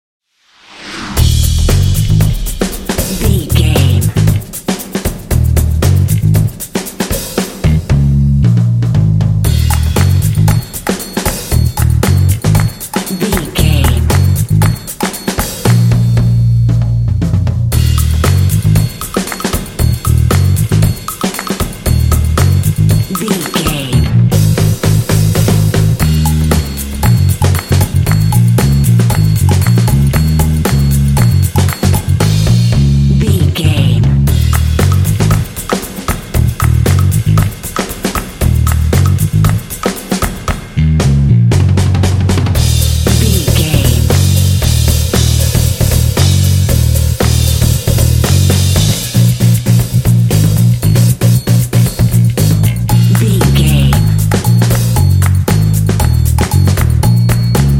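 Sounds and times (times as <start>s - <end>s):
percussion: 0.5s - 57.7s
bass line: 0.9s - 4.5s, 5.3s - 6.6s, 7.6s - 10.7s, 11.5s - 14.8s, 15.6s - 19.0s, 19.8s - 21.0s, 21.9s - 35.6s, 36.4s - 37.6s, 38.4s - 39.7s, 40.7s - 57.7s
hip funky drums: 0.9s - 57.7s
claps: 9.6s - 16.0s, 18.1s - 24.1s, 25.4s - 32.3s, 34.5s - 40.7s, 51.6s - 57.7s.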